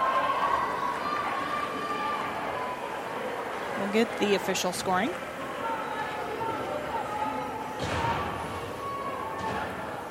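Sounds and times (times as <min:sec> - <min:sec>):
hockey arena crowd cheering: 0:00.0 - 0:10.0
speech: 0:03.8 - 0:05.3.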